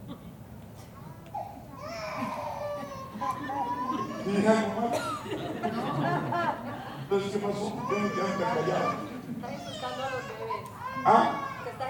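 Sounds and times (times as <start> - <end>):
babies crying: 1.3 - 4.9, 7.6 - 11.8
laughter: 2.2 - 8.2
speech: 4.3 - 6.5, 7.1 - 9.1, 11.0 - 11.4.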